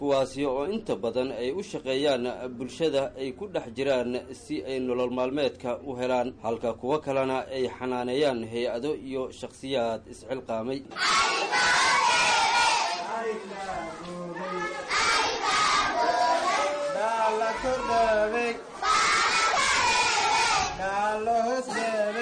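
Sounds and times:
speech: 0.0 - 12.2, 17.6 - 18.7, 20.8 - 22.2
hundreds of children, girls and boys, shouting together at a care centre in Mogadishu: 10.9 - 22.2.

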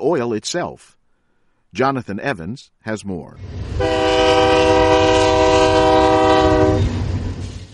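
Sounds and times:
speech: 0.0 - 1.0, 1.7 - 4.9
heavy rumble of passing freight rail cars: 3.4 - 7.7
freight train horn blast: 3.8 - 6.9.

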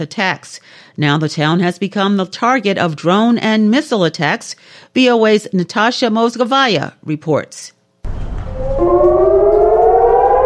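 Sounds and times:
speech: 0.0 - 7.8
civil defense siren warning of a rocket attack in Eilat southern Israel: 8.3 - 10.4.

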